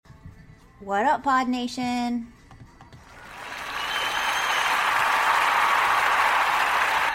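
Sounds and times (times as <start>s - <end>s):
speech: 0.8s - 2.4s
canned applause soundboard sound effect: 3.1s - 7.1s.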